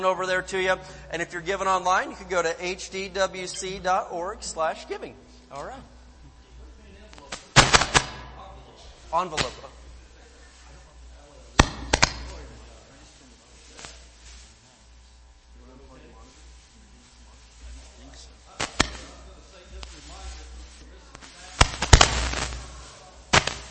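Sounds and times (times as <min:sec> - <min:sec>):
speech: 0:00.0 - 0:05.9, 0:09.1 - 0:09.8
fireworks popping: 0:07.1 - 0:08.4, 0:09.1 - 0:09.9, 0:11.5 - 0:12.7, 0:18.5 - 0:23.7.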